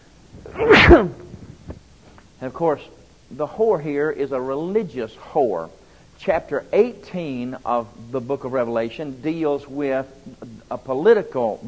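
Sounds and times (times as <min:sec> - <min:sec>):
person sneezing: 0:00.4 - 0:01.4
speech: 0:00.6 - 0:01.2, 0:02.4 - 0:11.6.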